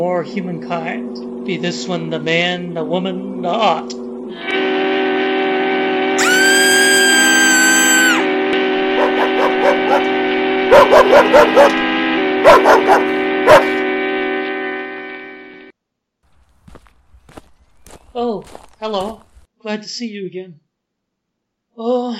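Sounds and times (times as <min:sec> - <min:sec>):
speech: 0:00.0 - 0:04.6, 0:11.0 - 0:11.8, 0:18.2 - 0:20.6, 0:21.8 - 0:22.1
steady droning hum: 0:00.0 - 0:06.2, 0:08.1 - 0:15.6
high whistling tone: 0:04.4 - 0:10.1
Doberman Pinscher barking in short bursts: 0:09.0 - 0:10.1, 0:10.7 - 0:11.8, 0:12.4 - 0:13.8.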